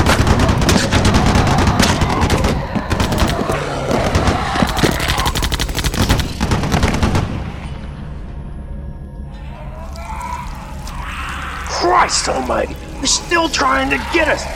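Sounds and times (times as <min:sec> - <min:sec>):
heavy automatic gunfire: 0:00.0 - 0:07.6
speech: 0:12.2 - 0:14.5.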